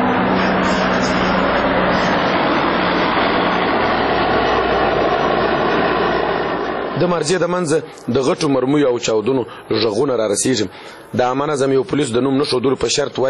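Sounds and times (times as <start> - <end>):
military helicopters, a jet and a large reconnaissance plane circling over Marja: 0.0 - 13.2
speech: 7.0 - 13.2.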